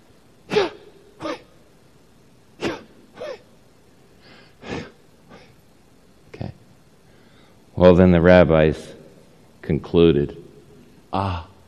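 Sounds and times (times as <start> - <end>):
human breathing in short airy breaths: 4.2 - 5.5, 7.0 - 7.7
speech: 7.8 - 9.0, 9.7 - 10.4, 11.1 - 11.5.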